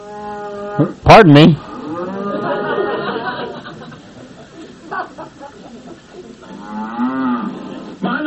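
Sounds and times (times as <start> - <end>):
cows mooing in long drawn-out bellows: 0.0 - 1.0, 1.6 - 3.6, 6.4 - 8.1
speech: 0.8 - 1.7
laughter: 2.2 - 6.6.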